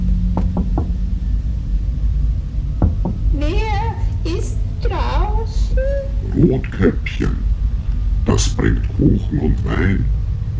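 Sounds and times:
low rumbling hum: 0.0 - 10.5
knocking on a wooden door: 0.4 - 1.0, 2.8 - 3.3
speech: 6.4 - 7.5, 8.3 - 10.5.

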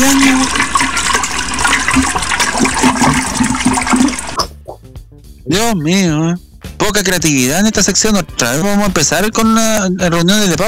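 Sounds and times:
toilet flushing: 0.0 - 4.4
water trickling: 0.0 - 4.6
speech: 5.5 - 10.6.

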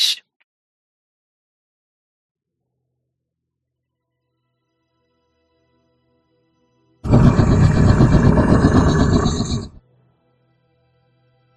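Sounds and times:
loud deep rumbling roar: 7.1 - 9.8.

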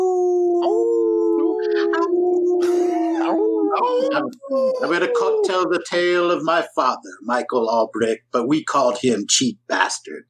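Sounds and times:
person howling like a wolf: 0.0 - 5.6
speech: 4.2 - 10.2.

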